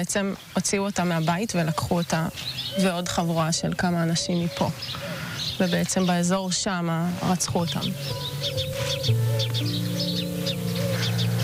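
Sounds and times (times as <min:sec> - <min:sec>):
speech: 0:00.0 - 0:11.2
birds chirping outdoors: 0:00.0 - 0:11.4.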